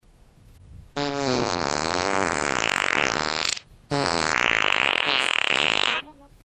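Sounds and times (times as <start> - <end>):
long fart: 1.0 - 6.2.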